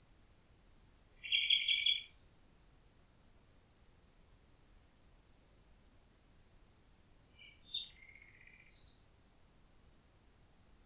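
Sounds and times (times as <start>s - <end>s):
common nightingale singing: 0.0s - 2.2s, 7.2s - 9.2s.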